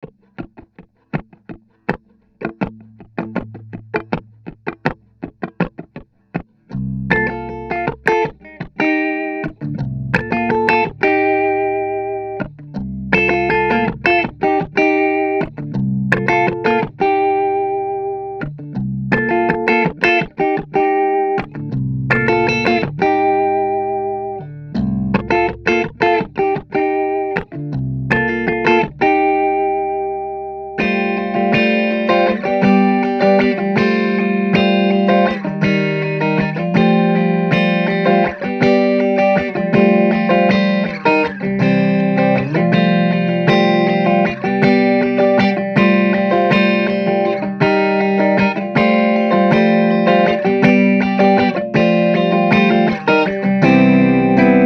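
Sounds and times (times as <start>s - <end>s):
riffy strummed guitar in C: 0.0s - 54.6s.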